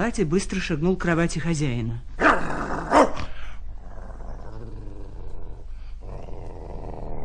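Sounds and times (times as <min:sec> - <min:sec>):
speech: 0:00.0 - 0:02.6
dog barking: 0:02.2 - 0:03.3
dog growling: 0:02.2 - 0:07.2.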